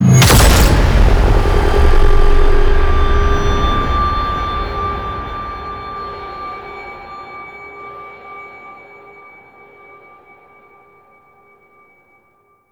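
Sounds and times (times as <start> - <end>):
ship pulse explosion: 0.0 - 7.1.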